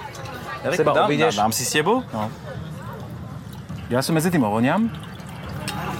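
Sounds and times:
speech: 0:00.6 - 0:02.7, 0:03.9 - 0:05.1
wine pouring from a bottle into a glass: 0:03.8 - 0:05.9.

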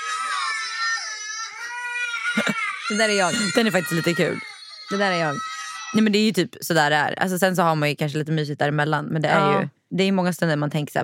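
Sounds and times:
children screaming and crying: 0:00.0 - 0:06.0
speech: 0:02.3 - 0:11.0.

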